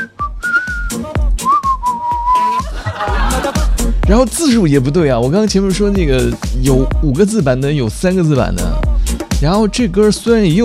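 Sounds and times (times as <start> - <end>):
whistled song melody: 0.0 - 2.8
steady punchy drum beat: 0.8 - 10.6
laughter: 2.4 - 4.0
speech: 4.1 - 10.6.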